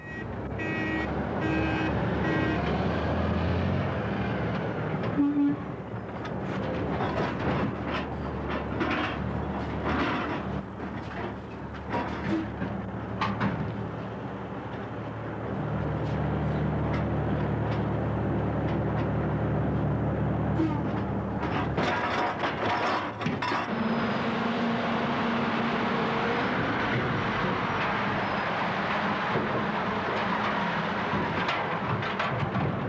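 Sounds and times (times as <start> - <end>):
beeping tones: 0.0 - 2.7
heavy machinery rumbling while loading slate onto rail trucks: 0.0 - 32.8.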